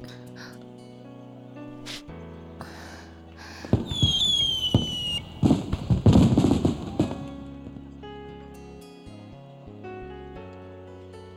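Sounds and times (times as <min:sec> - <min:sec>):
aerial fireworks bursting in open night air: 0:03.6 - 0:07.8.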